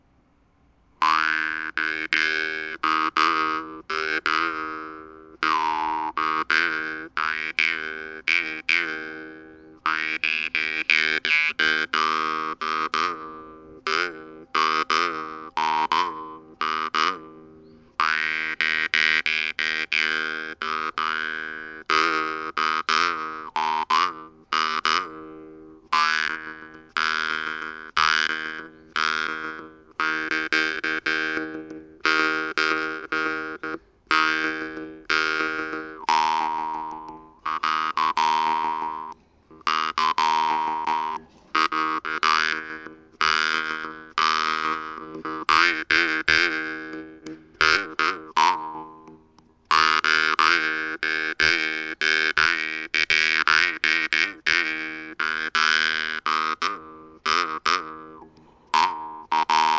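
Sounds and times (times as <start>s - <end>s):
notes with vibrato, pralltriller and mordent: 1.0s - 59.7s.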